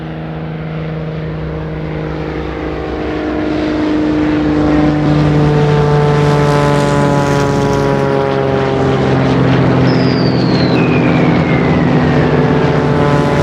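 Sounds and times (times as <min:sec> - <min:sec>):
formation of propeller aircraft droning overhead: 0:00.0 - 0:13.4.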